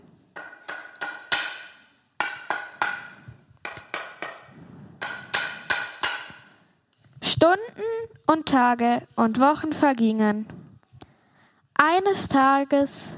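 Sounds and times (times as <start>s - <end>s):
hammer striking a nail: 0.4s - 6.5s
speech: 7.4s - 10.6s, 11.8s - 13.1s.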